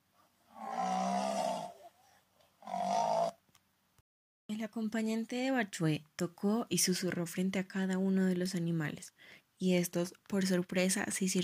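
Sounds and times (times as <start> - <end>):
jaguar roaring: 0.5 - 1.9, 2.6 - 3.4
speech: 4.6 - 11.4.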